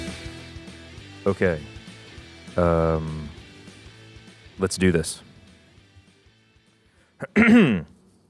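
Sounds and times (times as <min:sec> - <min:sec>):
speech: 0:01.3 - 0:01.7, 0:02.6 - 0:03.3, 0:04.6 - 0:05.3, 0:07.2 - 0:07.9
throat clearing: 0:07.2 - 0:08.0.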